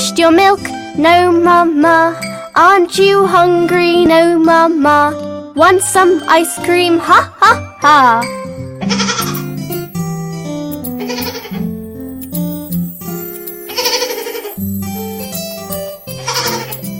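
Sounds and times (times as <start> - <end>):
tuneful music: 0.0 - 16.9
speech: 0.2 - 9.0
baby goat bleating: 8.9 - 9.4, 11.0 - 11.6, 13.7 - 14.6, 16.2 - 16.8.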